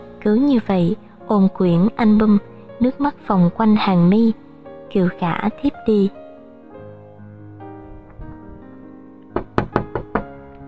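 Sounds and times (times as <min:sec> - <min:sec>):
speech: 0:00.2 - 0:06.2
knocking on a glass door: 0:09.4 - 0:10.4.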